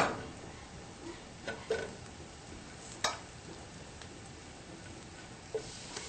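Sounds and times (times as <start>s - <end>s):
tempeh sizzling as it fries in hot oil: 0.1s - 6.0s.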